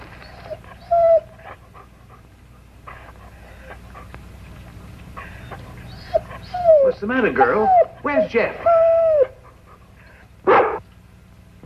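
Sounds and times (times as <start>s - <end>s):
low steady rumble: 0.0s - 11.6s
dog whimpering: 0.1s - 1.8s, 5.2s - 9.9s, 10.5s - 10.8s
dog panting: 0.1s - 10.3s
speech: 7.0s - 8.8s.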